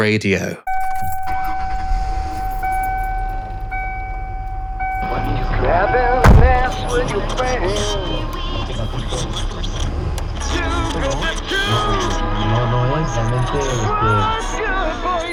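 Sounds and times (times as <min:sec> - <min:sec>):
speech: 0:00.0 - 0:00.7, 0:11.0 - 0:15.3
car chime tones: 0:00.7 - 0:06.9
low car engine rumble: 0:00.7 - 0:15.3
sharp thump: 0:06.2 - 0:07.1.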